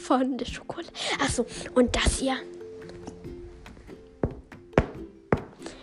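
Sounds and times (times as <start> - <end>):
speech: 0.1 - 2.6
book tapping on a head: 4.3 - 5.5.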